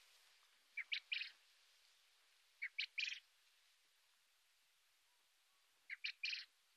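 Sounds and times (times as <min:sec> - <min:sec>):
Japanese quail: 0:00.8 - 0:01.3, 0:02.6 - 0:03.2.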